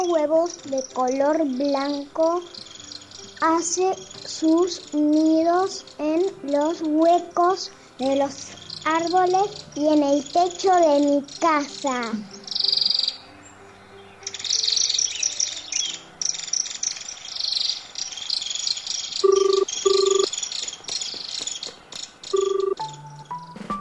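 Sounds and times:
speech: 0.0s - 2.7s, 3.4s - 12.4s
birds with green and red plumage chirping: 0.0s - 23.7s
short steady beeping tones: 19.2s - 20.3s, 22.4s - 23.0s.

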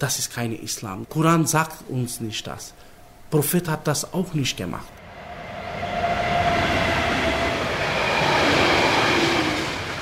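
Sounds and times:
speech: 0.0s - 5.0s
train rumbling past alongside a railway embankment in Düsseldorf: 5.0s - 10.0s
train wheels squealing on rail: 5.0s - 10.0s.

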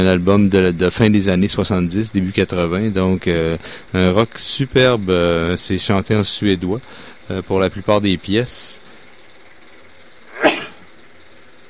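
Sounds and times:
speech: 0.0s - 8.8s
sneeze: 10.3s - 10.8s.

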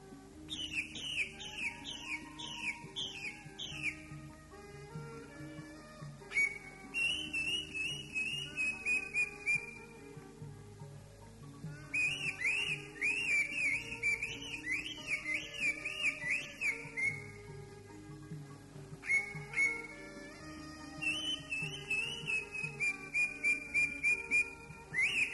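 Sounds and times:
low background noise: 0.0s - 25.3s
Greater green leafbird song of clear warbling whistles: 0.5s - 4.2s, 6.3s - 9.9s, 11.8s - 17.4s, 19.0s - 20.0s, 21.0s - 25.3s.

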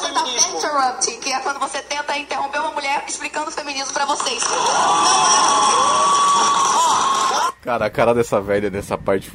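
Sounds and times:
speech: 0.3s - 9.3s
large crowd cheering and clapping: 4.4s - 7.6s
shrill high-pitched shouts: 4.4s - 7.6s.

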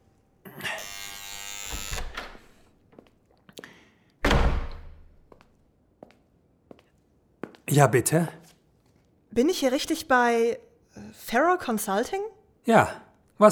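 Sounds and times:
door buzzer: 0.5s - 2.5s
speech: 7.7s - 8.4s, 9.4s - 13.5s.

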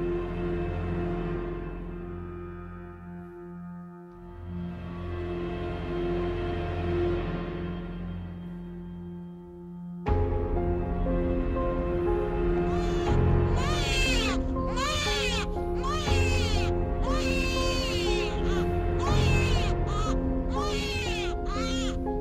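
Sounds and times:
steady sustained tonal background: 0.0s - 22.2s
newborn baby crying in a dark room: 12.6s - 22.2s.

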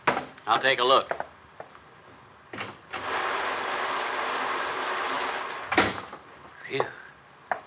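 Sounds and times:
speech: 0.5s - 1.2s, 6.7s - 6.9s
heavy rain: 3.0s - 6.1s.

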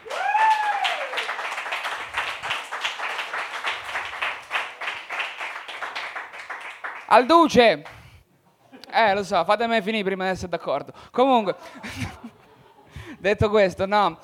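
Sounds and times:
person whooping: 0.0s - 1.3s
audience applauding at a comedy night: 0.0s - 7.2s
speech: 7.1s - 7.9s, 9.0s - 12.1s, 13.2s - 14.2s
laughter: 11.4s - 13.1s.

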